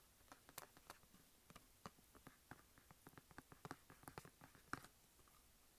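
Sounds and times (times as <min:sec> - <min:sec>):
fingernails tapping and scratching on a makeup palette: 0:00.3 - 0:04.9.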